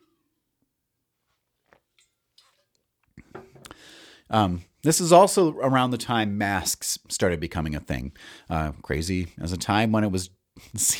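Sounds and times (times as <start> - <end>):
sipping water: 1.7 - 4.8
speech: 4.3 - 10.9.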